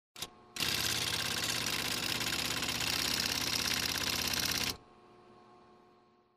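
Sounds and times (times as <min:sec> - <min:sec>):
mechanical drill: 0:00.2 - 0:04.8.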